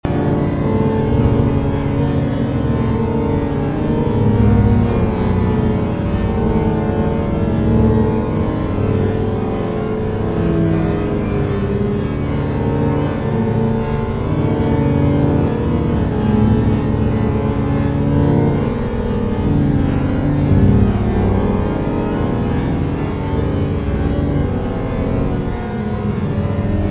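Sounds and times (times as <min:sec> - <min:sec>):
ghostly sounds: 0:00.1 - 0:26.8.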